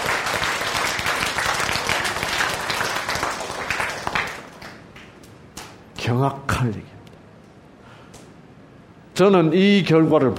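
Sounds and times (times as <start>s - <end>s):
audience applause: 0.0s - 5.1s
speech: 6.0s - 7.0s, 9.2s - 10.3s.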